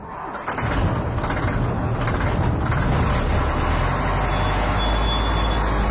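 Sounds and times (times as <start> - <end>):
big truck engine idling: 0.1 - 5.6
truck air brakes squealing: 4.2 - 5.8.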